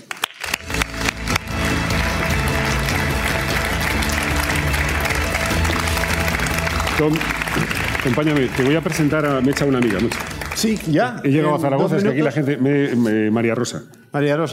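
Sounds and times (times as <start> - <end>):
audience applause: 0.0 - 11.0
speech: 7.0 - 14.5.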